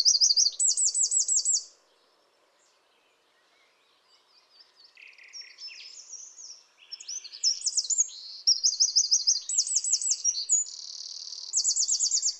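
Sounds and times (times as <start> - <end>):
Eurasian wren Troglodytes troglodytes singing trills and buzzy rattles: 0.0 - 1.7, 4.7 - 12.3.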